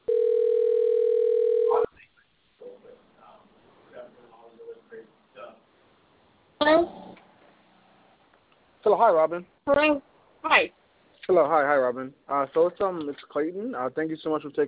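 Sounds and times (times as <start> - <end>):
telephone ringback tone while placing a call: 0.1 - 1.9
speech: 8.9 - 14.6.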